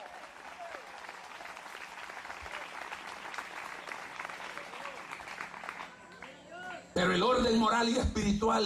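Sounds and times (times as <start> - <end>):
audience clapping loudly: 0.0 - 6.7
speech: 7.0 - 8.6.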